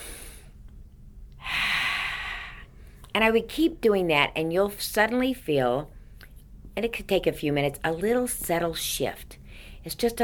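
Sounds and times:
long deep breathing in through the nose and out through the mouth: 0.0 - 0.6, 1.4 - 3.0
speech: 3.2 - 6.0, 6.8 - 10.2.

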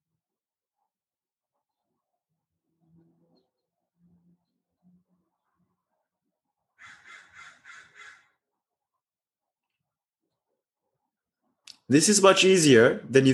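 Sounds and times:
soft low outdoor noise: 0.1 - 13.3
crow giving harsh rasping caws: 6.8 - 8.4
speech: 11.9 - 13.3.

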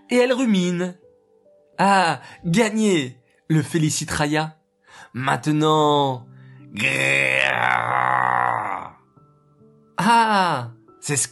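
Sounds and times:
speech: 0.1 - 1.0, 1.8 - 8.1, 10.0 - 11.3
person imitating a lion roar: 6.8 - 9.0.

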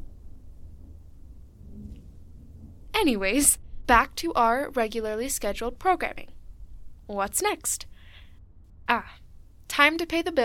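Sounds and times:
deep continuous rumble of thunder: 0.0 - 4.6
speech: 3.0 - 6.4, 7.1 - 7.9, 8.9 - 10.4.

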